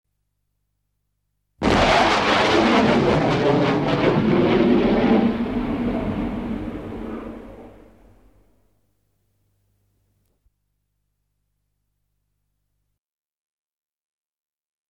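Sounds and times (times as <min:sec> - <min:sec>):
jet plane taking off: 0:01.6 - 0:08.4.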